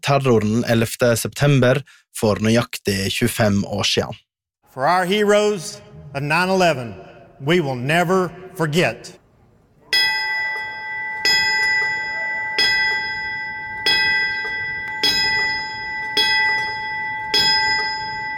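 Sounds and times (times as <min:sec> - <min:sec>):
speech: 0:00.1 - 0:09.2
memorial bell tolling: 0:09.9 - 0:18.3.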